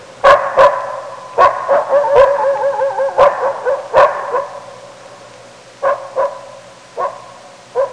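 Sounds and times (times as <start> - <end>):
wolf pup barking: 0.2 - 4.7, 5.8 - 7.9
wolf pup howling: 1.7 - 4.5.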